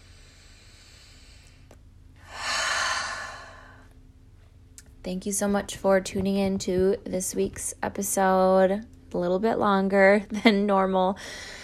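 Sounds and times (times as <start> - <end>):
deep slow relaxing breath during a guided relaxation exercise: 0.0 - 4.0
speech: 5.0 - 11.6.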